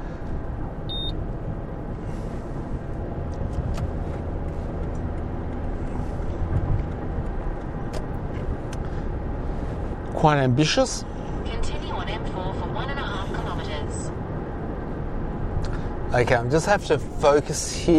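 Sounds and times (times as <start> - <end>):
road rumble from inside a car driving at speed onto a motorway: 0.0 - 17.9
electronic beep: 0.9 - 1.2
speech: 10.2 - 11.8, 16.2 - 17.9.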